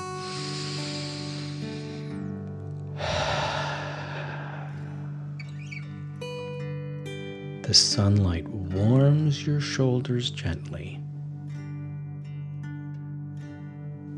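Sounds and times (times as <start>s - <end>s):
slow deep breathing in and out: 0.0s - 2.3s, 2.9s - 6.0s
soft sustained music: 0.0s - 14.1s
speech: 7.7s - 11.0s.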